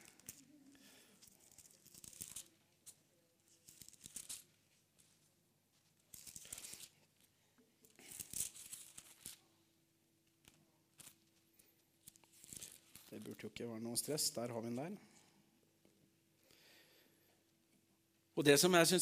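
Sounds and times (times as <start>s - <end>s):
pages of a Bible being flipped: 0.0s - 7.3s, 7.9s - 9.5s, 10.3s - 13.5s
speech: 13.2s - 15.1s, 18.4s - 19.0s.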